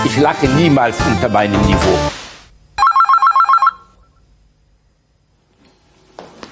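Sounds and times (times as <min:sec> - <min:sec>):
speech: 0:00.1 - 0:02.2
loud telephone bell ringing: 0:02.8 - 0:03.9.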